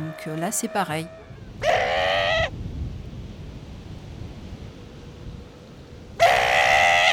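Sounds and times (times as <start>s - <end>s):
wind: 0.0s - 7.1s
speech: 0.2s - 1.8s
Australian sea lion pup contact call: 0.7s - 2.5s, 6.2s - 7.1s.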